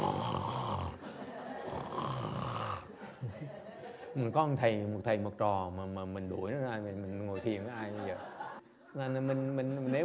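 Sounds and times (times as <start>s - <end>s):
person imitating snoring: 0.0s - 1.0s, 1.6s - 2.9s
laughter: 1.0s - 1.9s, 2.9s - 4.2s, 7.2s - 10.0s
speech: 4.2s - 10.0s.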